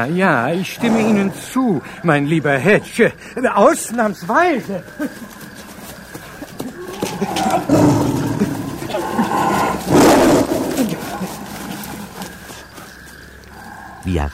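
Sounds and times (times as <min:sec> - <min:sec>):
speech: 0:00.0 - 0:05.4, 0:07.2 - 0:08.2, 0:14.0 - 0:14.3
tiger growling: 0:00.0 - 0:14.3
tiger roaring: 0:00.4 - 0:02.8, 0:06.8 - 0:12.5.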